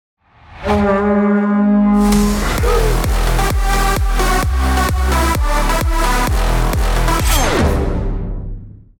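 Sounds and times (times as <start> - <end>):
solo music: 1.1 - 8.2.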